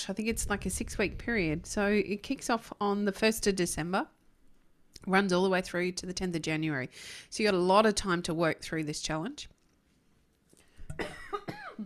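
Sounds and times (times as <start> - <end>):
speech: 0.0 - 4.2, 5.0 - 9.5
harsh voiced coughing fit: 10.9 - 11.8.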